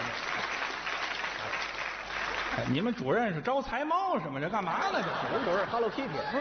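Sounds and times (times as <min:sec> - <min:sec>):
audience applause at a comedy sketch performance: 0:00.0 - 0:03.4
speech: 0:02.6 - 0:06.3
laughter: 0:04.2 - 0:06.3.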